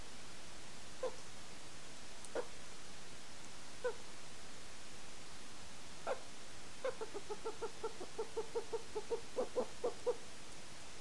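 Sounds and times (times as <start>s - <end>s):
golden eagle Aquila chrysaetos calling: 1.0s - 1.2s, 2.3s - 2.5s, 3.8s - 4.1s, 6.0s - 10.2s.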